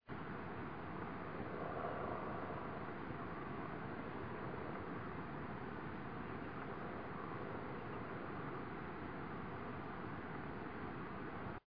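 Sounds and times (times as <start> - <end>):
wind blowing: 0.1 - 11.6.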